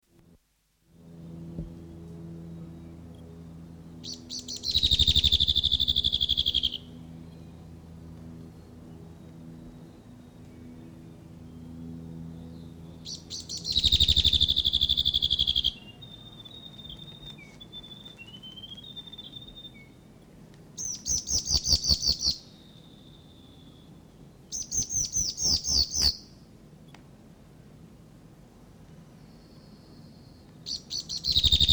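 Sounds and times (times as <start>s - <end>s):
male whitehead territorial call: 4.0s - 7.6s, 8.5s - 20.0s, 20.8s - 23.9s, 24.5s - 26.4s, 29.3s - 31.7s.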